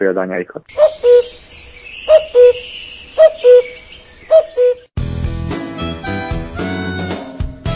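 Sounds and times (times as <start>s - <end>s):
speech: 0.0s - 1.7s
little owl calling: 0.7s - 4.9s
music: 5.0s - 7.7s.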